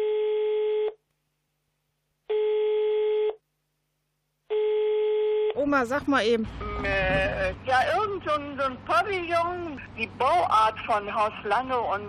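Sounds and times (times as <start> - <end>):
telephone ringback tone while placing a call: 0.0 - 1.0, 2.3 - 3.4, 4.5 - 5.6
speech: 5.6 - 12.0.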